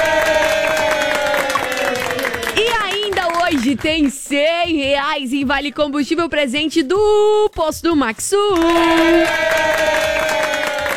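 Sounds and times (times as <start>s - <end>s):
crowd applause: 0.0s - 4.1s, 8.6s - 10.9s
speech: 3.6s - 9.5s.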